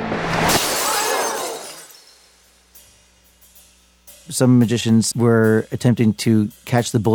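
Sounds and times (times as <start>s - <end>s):
glass pane shattering: 0.4s - 2.6s
glass fragments tinkling: 0.5s - 4.3s
speech: 4.3s - 7.1s.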